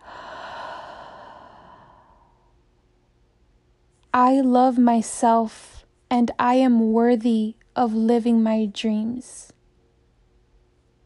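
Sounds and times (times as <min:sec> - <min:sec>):
slow deep breath in a guided breathing meditation: 0:00.0 - 0:02.6
speech: 0:04.2 - 0:09.5.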